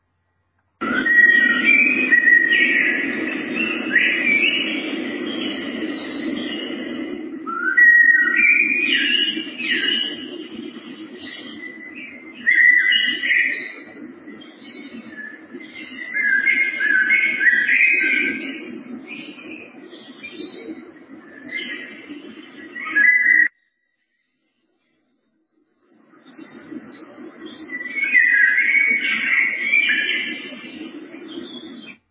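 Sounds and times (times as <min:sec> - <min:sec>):
dove-like calls: 0:00.8 - 0:23.5, 0:26.2 - 0:32.0
early morning spring woodland birdsong: 0:00.8 - 0:32.0.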